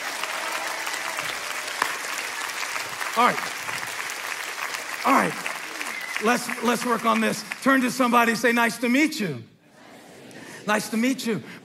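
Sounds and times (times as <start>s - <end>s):
audience applauding: 0.0s - 8.3s
speech: 3.2s - 3.8s, 5.0s - 5.5s, 6.2s - 9.5s, 10.6s - 11.6s.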